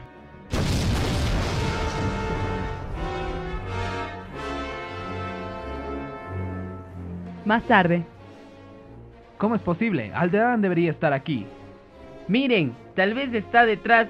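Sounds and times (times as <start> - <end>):
massive explosion as a laser ray destroys a planet: 0.5 - 4.3
speech: 7.5 - 8.1, 9.4 - 11.6, 12.3 - 14.0.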